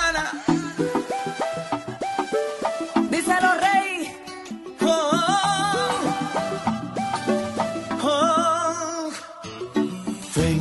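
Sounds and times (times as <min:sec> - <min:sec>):
newly released song playing: 0:00.0 - 0:10.5.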